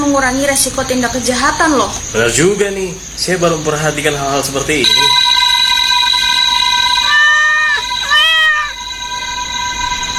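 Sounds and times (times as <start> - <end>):
steady high-pitched hum: 0.0 - 10.1
speech: 0.1 - 5.3
cat meowing outdoors on a night street: 7.1 - 8.8.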